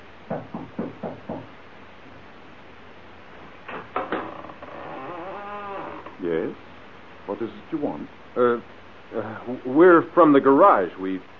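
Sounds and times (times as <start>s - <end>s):
knocking on the door of an old house: 0.3s - 1.6s
speech: 7.4s - 11.3s.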